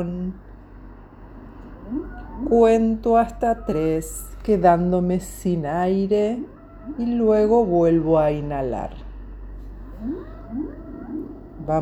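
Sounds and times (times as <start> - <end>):
speech: 0.0 - 0.5, 1.9 - 9.0
dolphin calls, rising drawn-out whistling cries: 1.7 - 4.5, 9.8 - 11.8.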